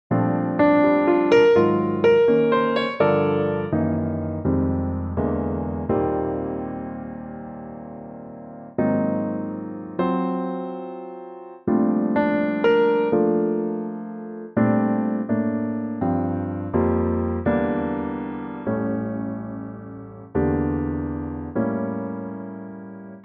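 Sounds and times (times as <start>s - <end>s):
B flat piano: 0.1s - 23.2s.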